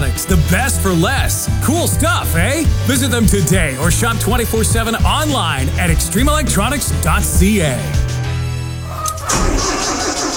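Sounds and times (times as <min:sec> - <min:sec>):
speech: 0:00.0 - 0:08.1
tractor engine cranking and struggling to start: 0:09.0 - 0:10.3.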